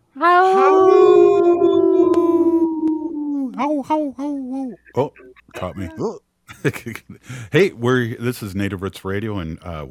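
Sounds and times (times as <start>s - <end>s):
wolf howling: 0.2s - 3.5s
speech: 3.8s - 9.8s.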